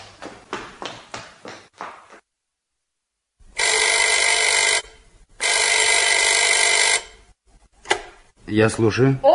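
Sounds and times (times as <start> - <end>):
telephone bell ringing: 3.6 - 7.3
speech: 8.5 - 9.3.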